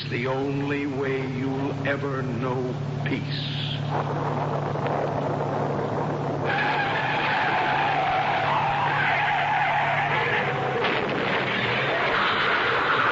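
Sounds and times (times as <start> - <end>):
steady car engine rumble: 0.0 - 13.0
speech: 0.1 - 7.0
car tires skidding on a highway at night in bad weather: 3.8 - 13.0.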